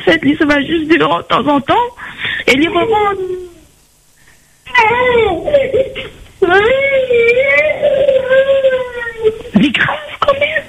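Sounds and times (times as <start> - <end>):
speech: 0.0 - 3.4, 4.7 - 10.6
high-pitched children's voices in wavering bursts: 4.7 - 10.6.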